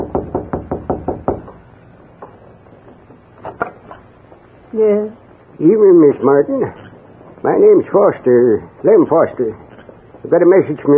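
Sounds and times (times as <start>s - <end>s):
knocking on the wooden door of a house: 0.0s - 1.6s
speech: 4.7s - 6.8s, 7.4s - 10.9s.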